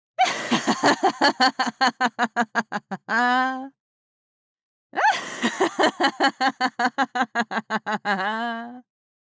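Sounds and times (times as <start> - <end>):
evil cackling laugh: 0.2 - 3.2, 5.0 - 8.6.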